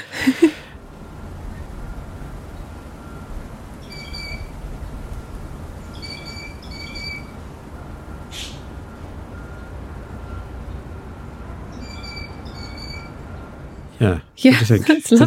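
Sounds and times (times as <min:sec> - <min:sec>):
laughter: 0:00.0 - 0:00.8
steady low rumbling noise: 0:00.0 - 0:15.2
bird giving a metallic phone-like ringing call: 0:03.8 - 0:04.6, 0:05.9 - 0:07.4, 0:11.7 - 0:13.2
speech: 0:14.0 - 0:15.2.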